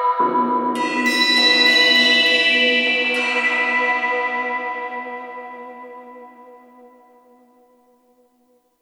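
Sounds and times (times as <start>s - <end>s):
Kurzweil K2500X synthesizer cymbal sound: 0.2s - 6.3s.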